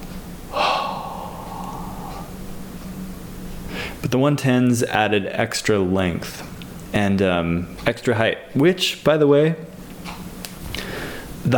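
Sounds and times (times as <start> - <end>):
faint low hum: 0.0 - 11.5
deep breath drawn in sharply: 0.5 - 2.4, 3.7 - 4.0, 10.7 - 11.3
speech: 4.0 - 10.2.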